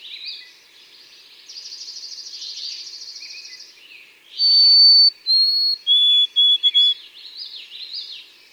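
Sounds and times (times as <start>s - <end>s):
bird buzzy trill: 4.4s - 6.9s
white-throated sparrow singing pure whistles: 4.4s - 7.0s.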